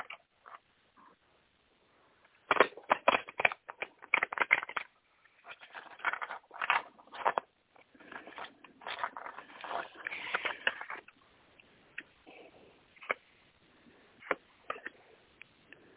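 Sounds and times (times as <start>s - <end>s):
deck of cards being shuffled: 2.4s - 11.2s.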